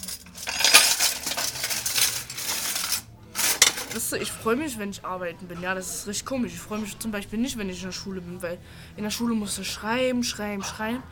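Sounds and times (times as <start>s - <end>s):
metal and ceramic dishes clinking while being cleaned: 0.0s - 4.0s
speech: 3.9s - 11.0s.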